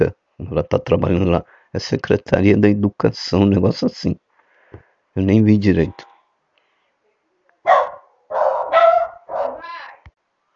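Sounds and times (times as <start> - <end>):
speech: 0.0 - 6.1
dog barking at home: 7.6 - 9.7.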